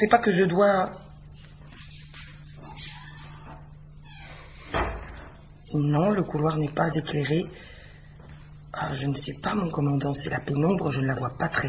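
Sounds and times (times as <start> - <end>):
speech: 0.0 - 1.0, 5.7 - 7.7, 8.7 - 11.6
steady low hum: 0.0 - 11.6
front door opening: 3.0 - 5.4
front door solid thump: 4.7 - 5.4.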